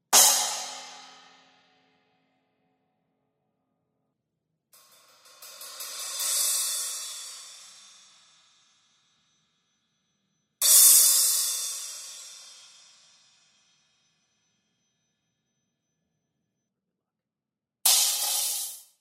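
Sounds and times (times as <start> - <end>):
cymbal stack: 0.2 - 1.7, 4.8 - 9.0, 10.6 - 13.8, 17.9 - 18.8.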